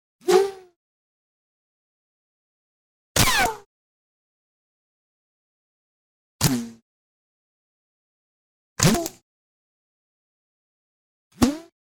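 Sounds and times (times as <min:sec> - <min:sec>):
bullet ricochet: 0:03.2 - 0:03.6, 0:08.8 - 0:09.1.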